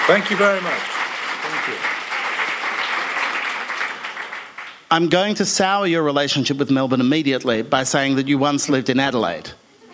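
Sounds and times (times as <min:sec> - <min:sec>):
large crowd applauding raucously to welcome a guest in Melbourne: 0:00.0 - 0:04.9
speech: 0:00.1 - 0:02.0, 0:04.9 - 0:09.6.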